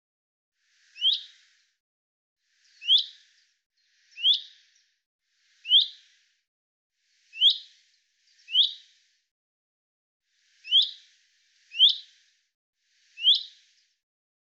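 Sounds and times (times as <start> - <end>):
common chaffinch chip calls: 2.8 - 3.1, 7.4 - 7.6, 8.5 - 8.8, 10.7 - 10.9, 11.7 - 12.0, 13.2 - 13.5.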